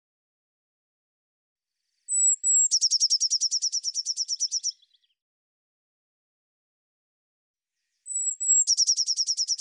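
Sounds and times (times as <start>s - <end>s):
Eurasian blue tit song with piercing high thin notes and quick trill: 2.1s - 5.2s, 8.0s - 9.5s.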